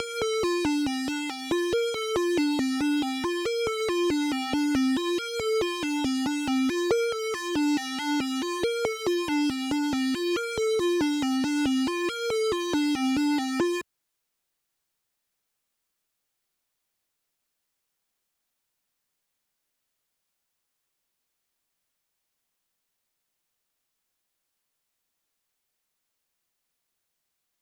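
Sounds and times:
139 BPM G minor arpeggiated synth melody: 0:00.0 - 0:13.8.

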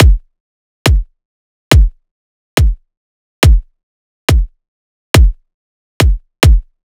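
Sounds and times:
riddim drum loop kick drum: 0:00.0 - 0:00.3, 0:00.9 - 0:01.1, 0:01.7 - 0:02.0, 0:02.6 - 0:02.8, 0:03.4 - 0:03.7, 0:04.3 - 0:04.6, 0:05.2 - 0:05.4, 0:06.0 - 0:06.8.

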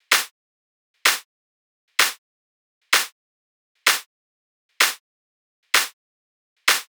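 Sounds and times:
melodic techno drum loop with clap: 0:00.0 - 0:00.3, 0:01.0 - 0:01.2, 0:02.0 - 0:02.2, 0:02.9 - 0:03.1, 0:03.9 - 0:04.1, 0:04.8 - 0:05.0, 0:05.8 - 0:06.0, 0:06.7 - 0:06.9.

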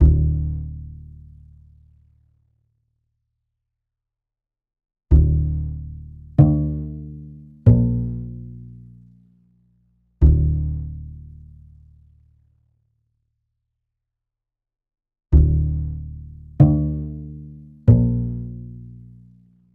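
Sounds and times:
lo-fi upright bass loop in D minor: 0:00.0 - 0:01.0, 0:05.1 - 0:08.8, 0:10.2 - 0:11.2, 0:15.4 - 0:19.0.

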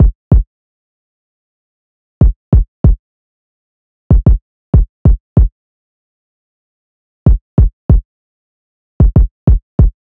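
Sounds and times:
95 BPM kick drum loop stem: 0:00.0 - 0:00.5, 0:02.2 - 0:03.0, 0:04.1 - 0:05.5, 0:07.3 - 0:08.0, 0:09.0 - 0:10.0.

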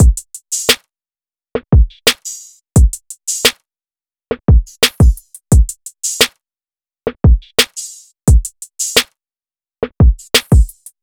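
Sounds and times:
drum loop: 0:00.0 - 0:00.8, 0:01.8 - 0:03.5, 0:04.3 - 0:06.3, 0:07.1 - 0:09.0, 0:09.8 - 0:10.9.

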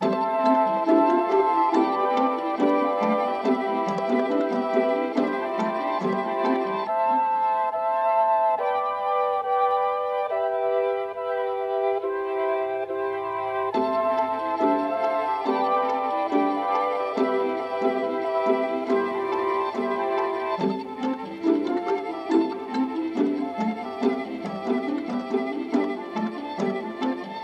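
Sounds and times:
nostalgic hip hop melody in C major: 0:00.0 - 0:27.4.

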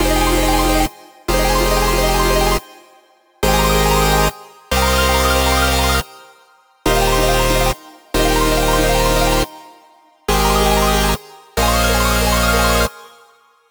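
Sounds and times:
future bass drop loop with synths in F minor: 0:00.0 - 0:02.6, 0:03.4 - 0:06.0, 0:06.9 - 0:09.5, 0:10.3 - 0:12.9.

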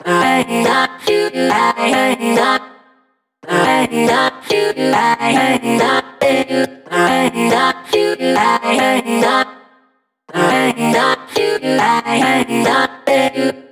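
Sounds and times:
future bass vocoder vocal chop loop in F minor: 0:00.0 - 0:09.7, 0:10.3 - 0:13.6.

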